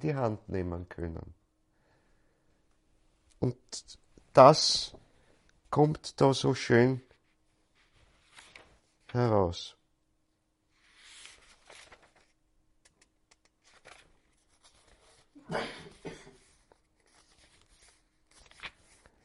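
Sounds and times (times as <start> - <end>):
speech: 0.0 - 1.4, 3.4 - 5.0, 5.7 - 7.1, 9.1 - 9.8, 15.5 - 15.8
book pages flipped in quick succession: 7.1 - 9.2, 10.8 - 19.2.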